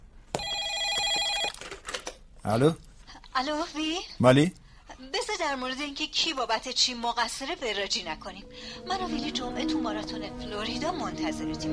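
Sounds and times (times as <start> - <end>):
telephone ringing with an electronic bell: 0.4 - 1.7
speech: 2.4 - 11.7.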